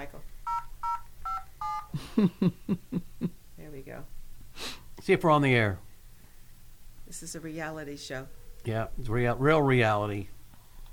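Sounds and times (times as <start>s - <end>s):
telephone keypad dialing tones: 0.5s - 1.9s
speech: 2.2s - 3.0s, 5.0s - 5.9s, 7.1s - 10.4s.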